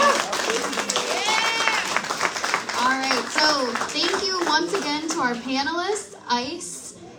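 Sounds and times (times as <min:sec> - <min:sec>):
excited cheers and whoops: 0:00.0 - 0:02.1
audience at a community forum clapping: 0:00.0 - 0:05.5
speech: 0:04.6 - 0:06.8.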